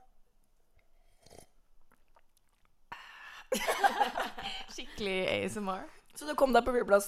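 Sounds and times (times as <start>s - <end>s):
person sipping a drink and swallowing: 0.7s - 2.9s
wet gulping and mouth sounds: 1.1s - 2.9s
laughter: 3.5s - 5.0s
speech: 3.5s - 7.0s.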